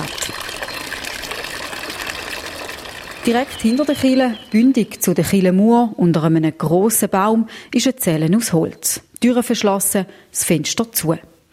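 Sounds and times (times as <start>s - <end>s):
water splashing in a fountain beside a church: 0.0s - 4.7s
speech: 3.3s - 11.5s.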